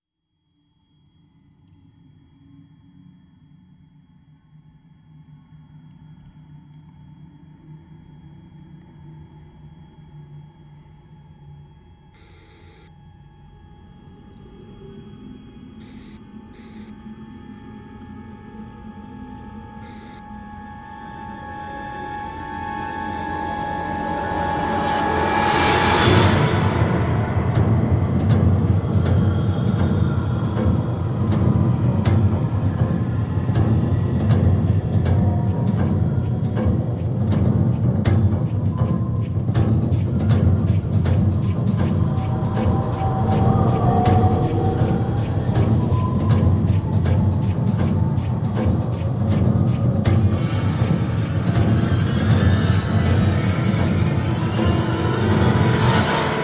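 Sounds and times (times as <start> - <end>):
synth pads: 12.7 - 56.4
small percussion: 23.1 - 56.4.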